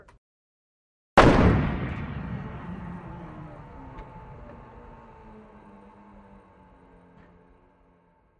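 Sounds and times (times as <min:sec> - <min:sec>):
175mm howitzer gun firing: 0:01.2 - 0:05.0.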